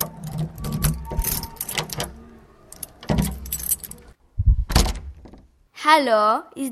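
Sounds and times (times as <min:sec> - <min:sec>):
keys jangling: 0:00.0 - 0:04.1
home door opening with a heavier thud and scrape: 0:00.0 - 0:05.5
lock of a home door clicking and rattling: 0:00.0 - 0:05.5
speech: 0:05.9 - 0:06.7.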